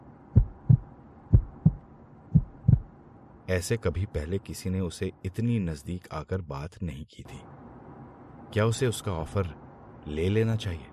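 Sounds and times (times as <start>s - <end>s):
fast heartbeat thumping: 0.4s - 2.9s
speech: 3.5s - 7.5s, 8.5s - 10.9s.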